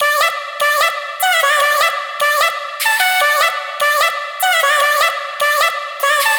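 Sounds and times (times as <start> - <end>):
vocal loop in D major: 0.0 - 6.3.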